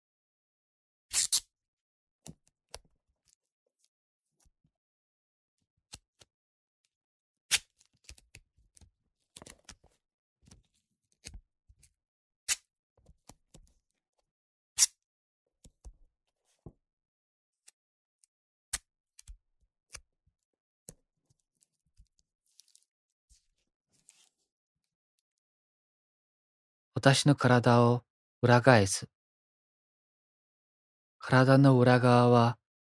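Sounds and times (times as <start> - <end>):
adhesive tape ripping and snipping into small pieces: 1.1 - 1.4
speech: 27.0 - 29.2, 31.2 - 32.6.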